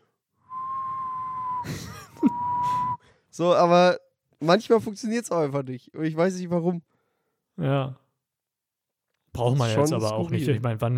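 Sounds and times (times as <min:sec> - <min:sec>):
person whistling a steady single tone: 0:00.4 - 0:03.1
speech: 0:01.6 - 0:02.4, 0:03.4 - 0:06.9, 0:07.6 - 0:08.0, 0:09.3 - 0:10.9.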